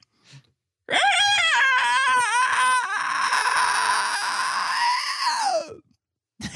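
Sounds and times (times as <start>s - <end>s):
vocal imitation of an alien screech by breathing backwards: 0.9s - 5.8s.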